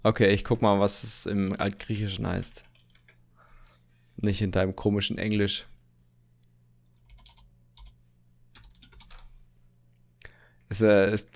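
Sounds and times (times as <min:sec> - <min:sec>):
speech: 0:00.0 - 0:02.7, 0:04.2 - 0:05.7, 0:10.7 - 0:11.3
low steady hum: 0:00.0 - 0:11.3
typing on a computer keyboard while searching online: 0:06.9 - 0:08.0, 0:08.6 - 0:09.2.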